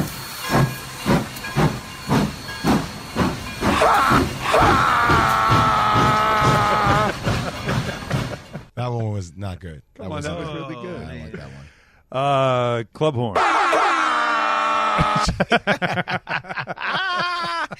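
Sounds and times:
steam locomotive chugging with hissing puffs of steam: 0.0s - 8.8s
long loud steam locomotive whistle blast: 3.6s - 7.2s
laughter: 4.7s - 8.7s, 14.9s - 17.7s
speech: 9.2s - 13.9s, 15.0s - 17.7s.

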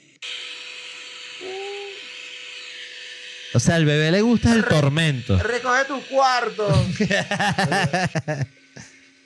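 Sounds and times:
vacuum cleaner recording played from a white-noise app: 0.0s - 9.2s
speech: 3.5s - 8.6s
laughter: 6.7s - 8.5s.

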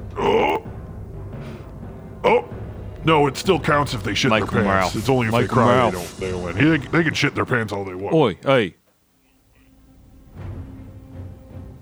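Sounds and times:
loud rough throaty burp: 0.1s - 0.7s
speech: 2.2s - 8.8s.

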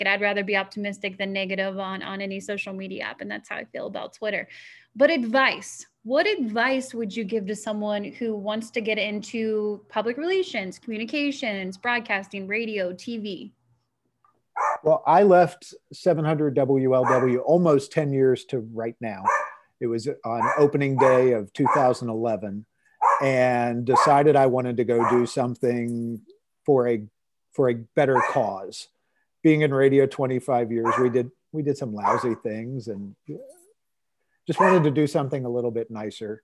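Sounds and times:
speech: 0.0s - 13.6s, 14.6s - 33.6s, 34.5s - 36.4s
dogs barking: 14.6s - 14.9s, 17.0s - 17.5s, 19.2s - 19.6s, 20.3s - 22.0s, 23.0s - 23.3s, 23.9s - 24.3s, 25.0s - 25.4s, 28.1s - 28.6s, 30.8s - 31.3s, 32.0s - 32.5s, 34.5s - 35.0s.

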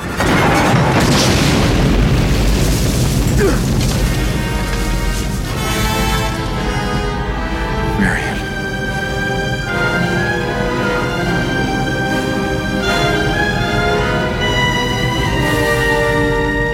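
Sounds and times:
loud rumbling truck explosion: 0.0s - 6.6s
mournful orchestral film score music with strings: 0.0s - 16.7s.

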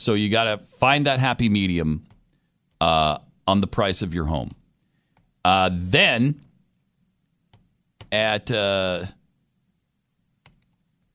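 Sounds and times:
speech: 0.0s - 2.1s, 2.8s - 4.6s, 5.4s - 6.5s, 8.1s - 9.2s
low hum: 0.0s - 11.1s
computer click clicking through a slideshow: 10.4s - 11.0s.

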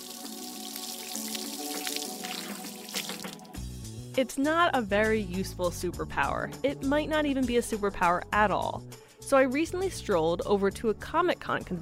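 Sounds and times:
stream of water spraying and splashing: 0.0s - 3.6s
speech: 4.2s - 11.7s.

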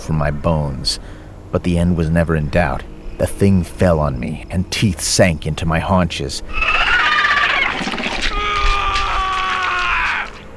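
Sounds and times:
speech: 0.1s - 6.9s
anguished screams echoing through a forest: 6.5s - 10.4s.

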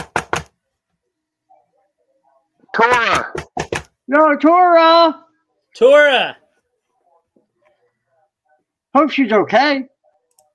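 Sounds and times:
firm knocks on a door: 0.0s - 0.5s, 2.9s - 4.0s
speech: 2.8s - 3.5s, 4.1s - 5.2s, 5.8s - 6.4s, 9.0s - 9.9s.

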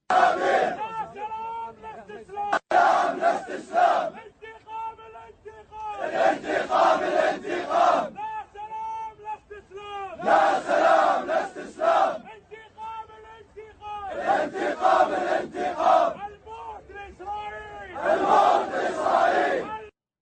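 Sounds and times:
large protest crowd chanting loudly in unison: 0.1s - 0.9s, 2.6s - 4.2s, 6.0s - 8.2s, 10.2s - 12.3s, 14.1s - 16.2s, 18.0s - 19.7s.

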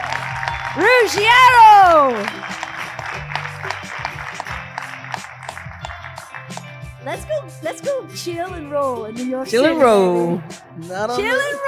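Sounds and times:
people whooping in a crowd: 0.0s - 5.0s
audience clapping and cheering: 0.0s - 7.2s
speech: 0.8s - 2.5s, 7.1s - 11.6s.

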